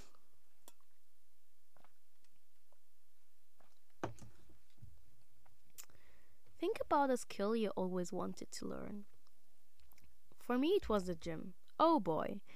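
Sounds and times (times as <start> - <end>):
lip smacks and clicks of someone sipping a hot drink: 5.7 - 6.0, 9.2 - 10.2
speech: 6.6 - 9.1, 10.5 - 12.5.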